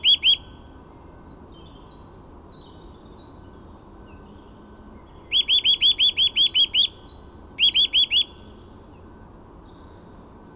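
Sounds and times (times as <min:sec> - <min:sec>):
Eurasian nuthatch Sitta europaea giving clear upslurred whistled notes: 0:00.0 - 0:00.6, 0:05.2 - 0:08.5.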